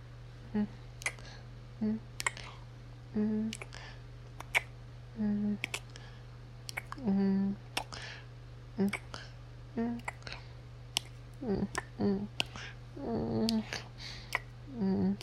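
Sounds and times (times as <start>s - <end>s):
low steady hum: 0.0s - 15.2s
brief quiet hums from a voice: 0.5s - 2.5s, 3.1s - 3.8s, 4.4s - 5.9s, 6.7s - 8.0s, 8.8s - 10.4s, 11.4s - 15.2s
soft wet kissing smacks: 1.0s - 1.3s, 2.2s - 2.5s, 3.4s - 4.8s, 5.5s - 6.0s, 6.6s - 8.0s, 8.8s - 9.2s, 9.8s - 12.7s, 13.4s - 15.2s.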